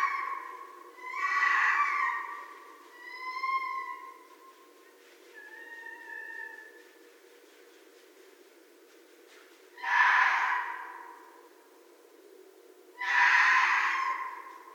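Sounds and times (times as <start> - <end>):
red fox rasping scream and whining cries: 0.0 - 4.3, 9.8 - 11.2, 13.0 - 14.7.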